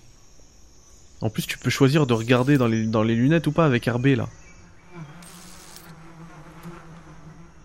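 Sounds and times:
speech: 1.2 - 4.4
many bees buzzing around a hive: 1.8 - 3.1, 4.3 - 7.6.

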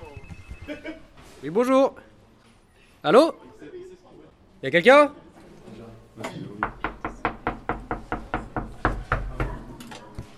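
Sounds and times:
speech: 0.7 - 2.1, 3.0 - 3.8, 4.6 - 5.2
firm knocking on a door: 6.6 - 9.6.

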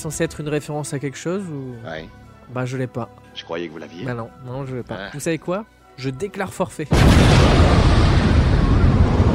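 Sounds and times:
speech: 0.0 - 7.9
loud booming explosion: 6.9 - 9.3.

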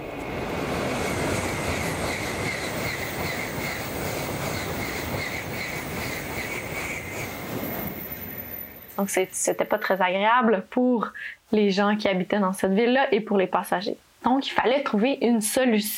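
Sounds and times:
Shinkansen high-speed bullet train in Japan roaring with faint high whine: 0.0 - 10.0
speech: 9.0 - 15.9.

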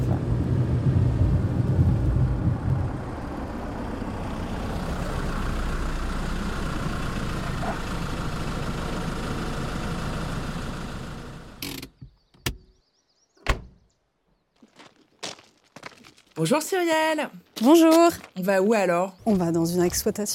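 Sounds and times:
car engine idling at a farm: 0.0 - 11.8
speech: 16.4 - 20.3.

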